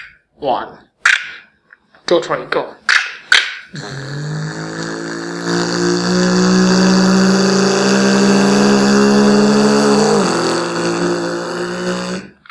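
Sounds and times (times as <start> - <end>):
speech: 0.4 - 0.9, 2.1 - 2.9, 3.7 - 4.4
voice imitating high-revving F1 race car engine: 3.7 - 12.4.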